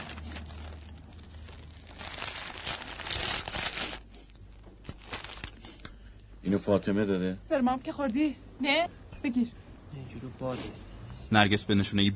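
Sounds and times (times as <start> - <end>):
bag being opened, rustling and crinkling: 0.0 - 4.2
paper envelope pulled out of a bag, crinkling: 0.0 - 5.9
speech: 6.5 - 12.1.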